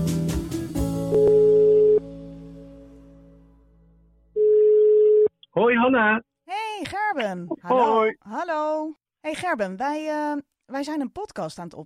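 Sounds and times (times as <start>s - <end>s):
telephone ringback tone while calling someone: 1.1s - 2.0s, 4.4s - 5.3s
speech: 5.6s - 11.8s.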